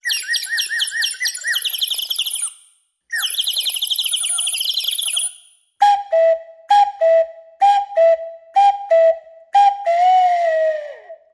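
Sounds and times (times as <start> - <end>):
cuckoo calling: 0.0 - 2.5, 3.1 - 11.2
bird tweets: 0.0 - 5.5.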